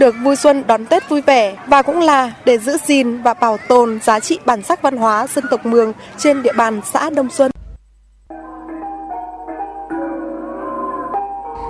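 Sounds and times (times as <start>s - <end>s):
speech: 0.0s - 7.5s
Muong gong ensemble playing: 8.3s - 11.6s.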